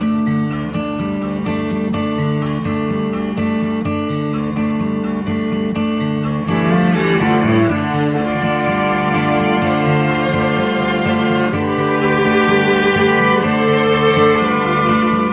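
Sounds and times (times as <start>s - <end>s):
guitar: 0.0s - 15.3s
strings: 6.0s - 15.3s.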